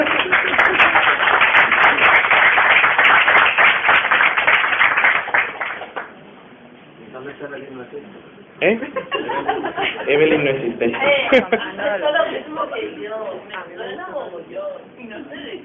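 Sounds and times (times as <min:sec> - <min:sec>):
laughter: 0:00.0 - 0:01.3, 0:08.7 - 0:12.8
crowd applauding: 0:00.0 - 0:06.2
speech: 0:08.0 - 0:15.6.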